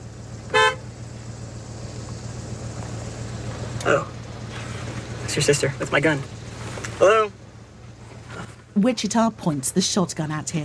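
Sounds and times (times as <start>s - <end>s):
low steady engine hum: 0.0s - 10.6s
car horn honk: 0.5s - 0.9s
speech: 3.8s - 4.1s, 5.3s - 6.4s, 7.0s - 7.4s, 8.8s - 10.6s.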